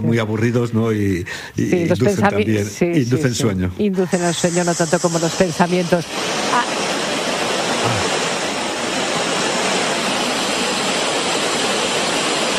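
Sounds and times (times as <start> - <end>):
speech: 0.1 - 6.9
steady pink noise: 1.3 - 12.5.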